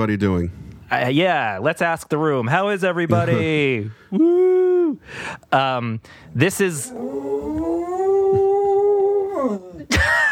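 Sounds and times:
speech: 0:00.0 - 0:07.9
dog howling: 0:06.8 - 0:09.9.

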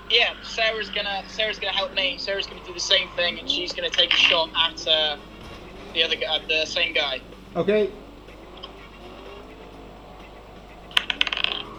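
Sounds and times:
speech: 0:00.1 - 0:05.3, 0:06.0 - 0:08.0
dice clattering across a hard tabletop: 0:11.0 - 0:11.7.

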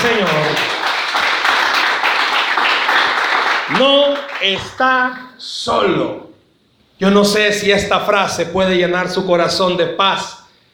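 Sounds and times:
audience applauding: 0:00.0 - 0:04.8
speech: 0:03.8 - 0:06.3, 0:07.0 - 0:10.4.

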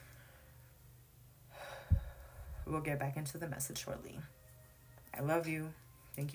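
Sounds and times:
deep intentional breath drawn in: 0:01.5 - 0:02.7
speech: 0:02.7 - 0:04.4, 0:05.2 - 0:06.3.

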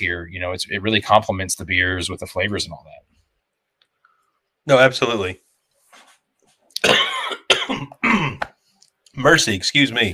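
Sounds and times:
speech: 0:00.0 - 0:03.1, 0:04.7 - 0:05.4, 0:09.2 - 0:10.1
person coughing with a throaty rattle: 0:06.8 - 0:08.5.

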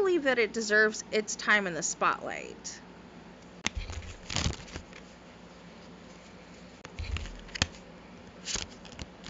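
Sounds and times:
speech: 0:00.2 - 0:02.8
tarot card deck shuffling: 0:03.6 - 0:05.1, 0:06.8 - 0:09.2.

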